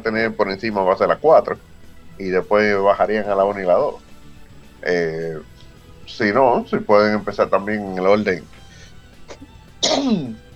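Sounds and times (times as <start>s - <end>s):
speech: 0.0s - 4.0s, 4.8s - 8.6s, 9.8s - 10.4s
quiet breath: 8.5s - 9.2s
sharp sneeze: 9.8s - 10.4s.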